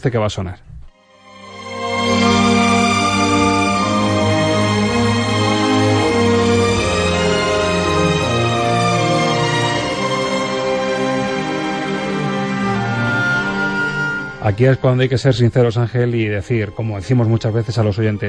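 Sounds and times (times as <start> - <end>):
speech: 0.0 - 0.7, 14.4 - 18.2
lush slow orchestral love theme from a film soundtrack: 1.0 - 18.2.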